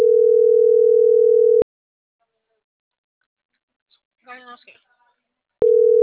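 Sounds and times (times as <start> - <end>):
telephone line tone while dialing a number: 0.0 - 1.6, 5.6 - 6.0.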